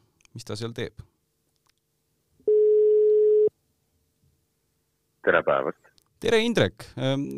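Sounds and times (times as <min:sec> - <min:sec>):
speech: 0:00.4 - 0:01.1, 0:05.3 - 0:07.3
phone call ringing tone: 0:02.5 - 0:03.5.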